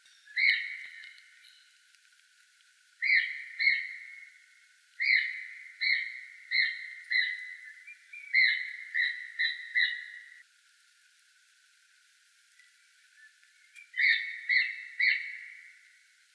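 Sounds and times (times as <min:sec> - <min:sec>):
marmot calling: 0:00.4 - 0:01.2, 0:03.0 - 0:04.3, 0:05.0 - 0:10.4, 0:13.9 - 0:15.7.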